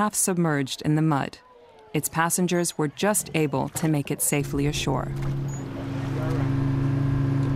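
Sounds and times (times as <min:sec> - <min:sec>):
speech: 0:00.0 - 0:05.6
boat engine droning across open water: 0:02.0 - 0:07.5.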